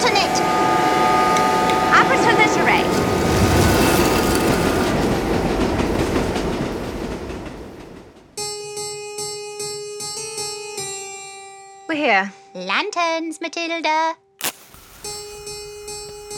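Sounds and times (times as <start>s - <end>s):
train passing: 0.0s - 8.3s
speech: 12.2s - 14.2s.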